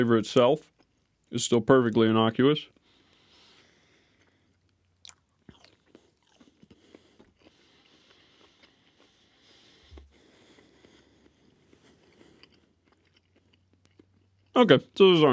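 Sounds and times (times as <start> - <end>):
speech: 0.0 - 0.7, 1.3 - 2.8, 14.6 - 15.3
crunchy mushrooms being chewed: 2.7 - 14.6.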